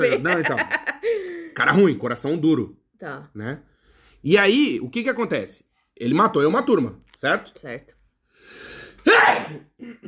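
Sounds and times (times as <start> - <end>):
laughter: 0.0 - 1.1
speech: 0.0 - 10.0
person sneezing loudly: 9.0 - 10.0.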